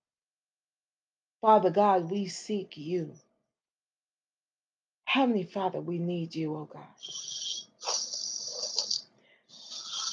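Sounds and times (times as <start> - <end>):
speech: 1.4 - 3.2, 5.2 - 8.0
young man's heavy rasping snore-like breathing: 7.0 - 10.1.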